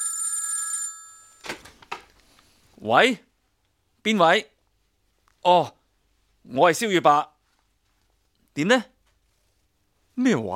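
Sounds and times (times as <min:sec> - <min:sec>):
telephone ringing: 0:00.0 - 0:01.5
speech: 0:02.8 - 0:03.3, 0:04.0 - 0:04.5, 0:05.4 - 0:05.8, 0:06.4 - 0:07.3, 0:08.6 - 0:08.9, 0:10.2 - 0:10.5.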